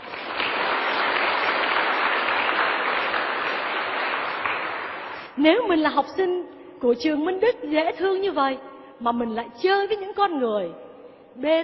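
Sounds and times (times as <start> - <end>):
crowd of school students applauding: 0.0 - 5.4
speech: 5.4 - 10.8, 11.4 - 11.6.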